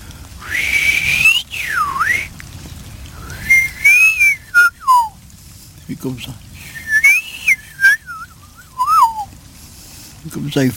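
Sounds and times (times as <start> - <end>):
faint hiss: 0.0 - 10.7
person whistling an imitation of yellow-billed blackbird spring song: 0.4 - 2.3, 3.3 - 5.1, 6.7 - 9.3
speech: 5.9 - 6.5, 10.3 - 10.7.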